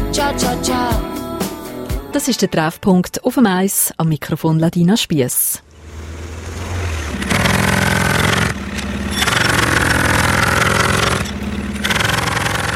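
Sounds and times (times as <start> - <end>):
speech: 0.2 - 1.2, 2.1 - 5.7
pneumatic jackhammer drilling: 6.3 - 12.7.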